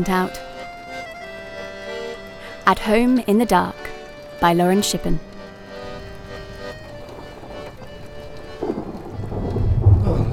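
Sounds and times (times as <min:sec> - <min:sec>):
speech: 0:00.0 - 0:00.5, 0:02.7 - 0:03.8, 0:04.4 - 0:05.3
heavy rain pouring: 0:05.3 - 0:10.3
deep thunder rumbling: 0:07.1 - 0:10.3.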